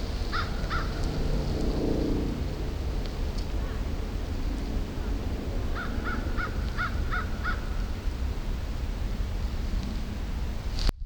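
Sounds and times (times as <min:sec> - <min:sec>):
heavy low-pitched rumbling noise: 0:00.0 - 0:11.0
American crow cawing harshly: 0:00.3 - 0:01.0, 0:03.6 - 0:03.9, 0:05.7 - 0:07.9.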